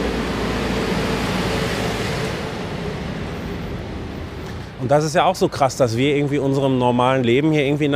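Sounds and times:
garbage truck engine drone driving through town: 0.0s - 6.1s
speech: 4.8s - 7.9s.

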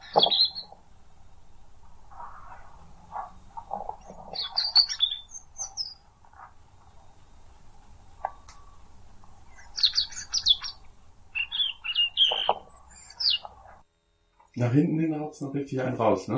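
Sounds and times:
European robin singing: 0.0s - 1.4s, 2.1s - 7.4s, 8.0s - 13.8s
speech: 14.6s - 16.3s.

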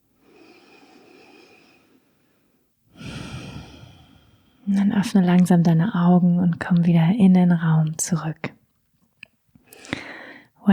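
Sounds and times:
deep breath in and out during a guided relaxation exercise: 0.0s - 4.7s, 9.7s - 10.6s
speech: 4.7s - 8.6s.

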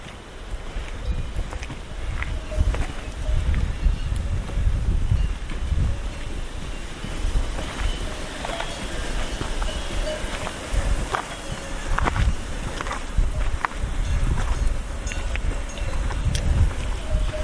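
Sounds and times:
gusting wind: 0.0s - 17.4s
rushing water: 0.0s - 17.4s
cowbells on cows on an alpine pasture clanking: 0.8s - 17.4s.

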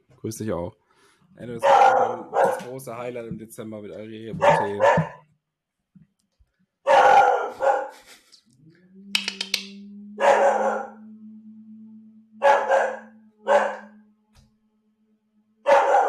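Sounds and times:
speech: 0.2s - 0.8s, 1.4s - 5.2s
dog barking: 1.6s - 2.8s, 4.3s - 5.2s, 6.8s - 8.1s, 10.2s - 11.0s, 12.4s - 14.0s, 15.7s - 16.0s.

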